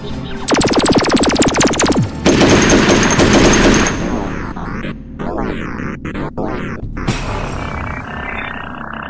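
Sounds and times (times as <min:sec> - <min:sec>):
rapid blaster fire shooting security robots: 0:00.5 - 0:06.8.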